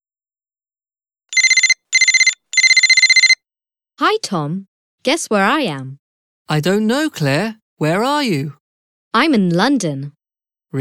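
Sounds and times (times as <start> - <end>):
telephone ringing with rapid electronic trill: 1.3 - 3.4
speech: 4.0 - 8.6, 9.2 - 10.7.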